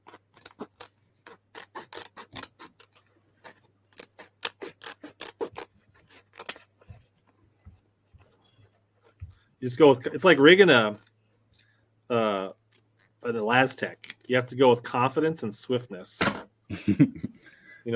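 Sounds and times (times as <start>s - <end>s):
scissors snipping: 0.0s - 6.7s
speech: 9.6s - 11.0s, 13.3s - 17.9s.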